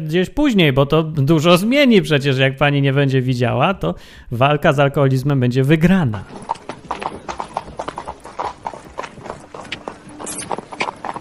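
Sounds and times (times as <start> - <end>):
speech: 0.0 - 6.6
several horses' hooves clip-clopping on concrete: 6.1 - 11.1.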